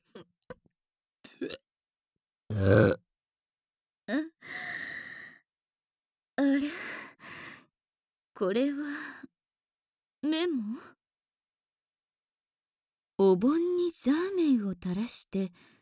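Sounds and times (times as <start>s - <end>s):
loud throaty burp: 1.3s - 1.6s, 2.5s - 3.0s
breathy sighs: 2.5s - 3.0s
short wordless vocal sounds: 2.5s - 3.0s
soft grunts: 2.5s - 3.0s
speech: 8.4s - 9.2s, 10.3s - 11.0s, 13.2s - 15.7s.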